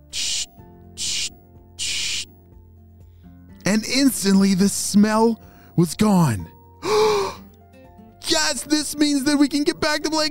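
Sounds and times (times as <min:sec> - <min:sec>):
spray bottle spraying scented soap onto football equipment: 0:00.0 - 0:02.3
speech: 0:03.7 - 0:07.0, 0:08.6 - 0:10.3.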